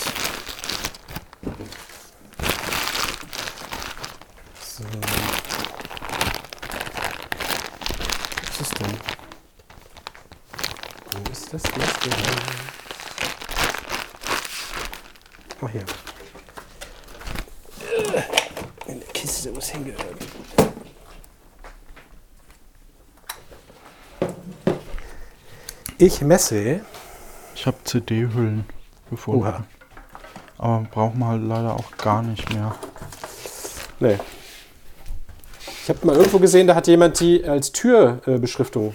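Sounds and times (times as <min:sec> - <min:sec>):
rummaging through a drawer of old empty batteries: 0:00.0 - 0:21.2, 0:29.8 - 0:34.3
speech: 0:11.5 - 0:12.7, 0:26.0 - 0:27.0, 0:27.6 - 0:29.8, 0:30.6 - 0:32.9, 0:34.0 - 0:34.4, 0:35.9 - 0:38.9
voice murmuring: 0:17.7 - 0:20.2.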